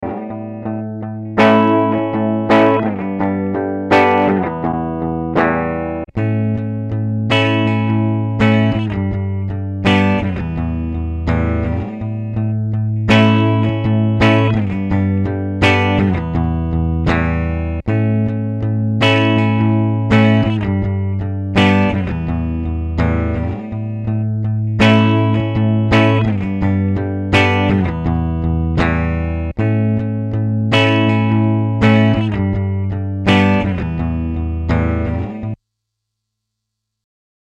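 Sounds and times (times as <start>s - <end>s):
distorted guitar through mid-scooped equalizer pedal: 0.0s - 35.6s.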